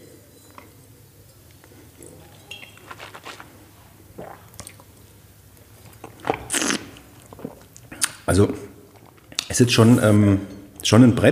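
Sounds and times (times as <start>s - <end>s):
soft mouth and handling sounds: 1.5s - 8.3s
wet slurp of a small sip of wine during a tasting: 2.0s - 3.6s, 4.2s - 5.0s, 5.8s - 8.1s
speech: 8.3s - 8.7s, 9.5s - 11.2s.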